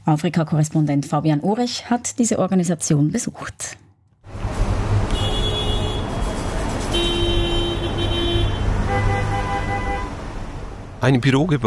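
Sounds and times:
speech: 0.0 - 3.8, 11.0 - 11.6
dense city street traffic rumbling: 4.2 - 11.6
car horns honking at different pitches: 4.9 - 10.4.

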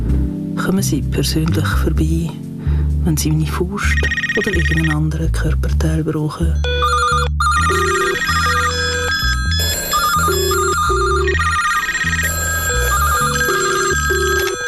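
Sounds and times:
steady bass pattern: 0.0 - 2.3, 2.9 - 14.6
speech: 0.7 - 2.4, 3.0 - 7.2
telephone ringing with an electronic melody: 3.8 - 5.0, 6.6 - 14.6.

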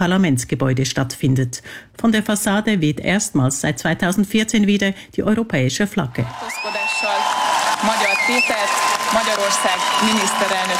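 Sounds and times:
speech: 0.0 - 10.7
large crowd cheering and clapping in and in front of a parliament building: 6.2 - 10.7.

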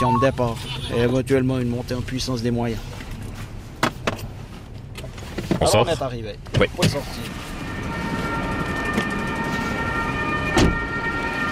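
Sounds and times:
speech: 0.0 - 3.0, 5.6 - 7.5
rumbling street noise: 0.4 - 11.5
ambulance siren: 7.0 - 11.5.

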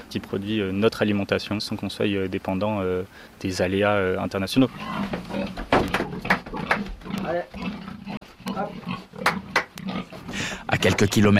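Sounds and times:
low farmyard hum in Pozieux: 0.0 - 11.3
speech: 0.1 - 6.4, 10.8 - 11.3
pigs grunting and snorting on a farm in Pozieux: 4.6 - 11.0.

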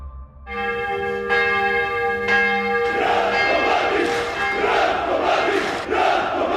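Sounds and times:
church bells tolling: 0.5 - 6.5
large crowd murmuring and shouting at a funeral: 2.8 - 6.5.

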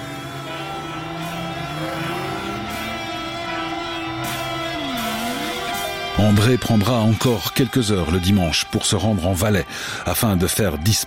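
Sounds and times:
car engine starting, revving and pulling away at night: 0.0 - 7.5
speech: 6.2 - 11.0.

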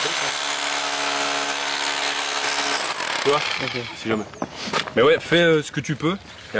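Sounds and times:
hammer drill running: 0.0 - 4.0
speech: 3.2 - 6.5.

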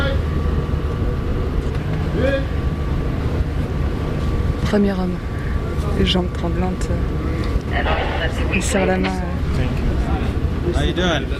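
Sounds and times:
boat engine rumble: 0.0 - 11.3
indistinct voices: 4.6 - 11.3
speech: 4.7 - 5.3, 5.9 - 9.9, 10.6 - 11.3.

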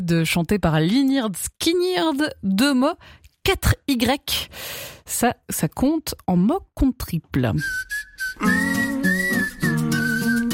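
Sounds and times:
speech: 0.0 - 8.7
breathy whistled tune through the nose or on an inhale: 7.6 - 10.5.

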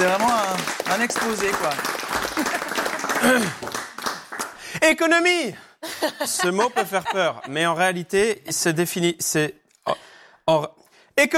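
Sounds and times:
audience applause: 0.0 - 4.6
speech: 1.0 - 3.8, 4.8 - 11.3
laughter: 5.8 - 8.1.

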